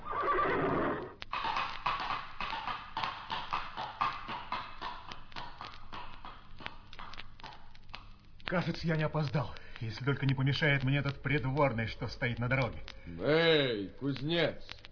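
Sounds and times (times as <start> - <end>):
horse neighing: 0.0 - 1.2
horse hooves clopping at a gallop: 0.0 - 13.1, 14.0 - 14.8
speech: 8.5 - 14.8.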